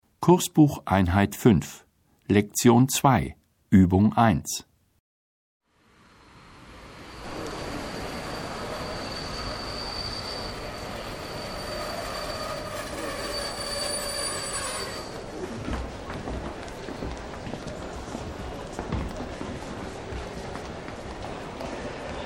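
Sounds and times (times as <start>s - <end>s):
speech: 0.2s - 4.7s
arriving train wheels squealing: 6.9s - 15.3s.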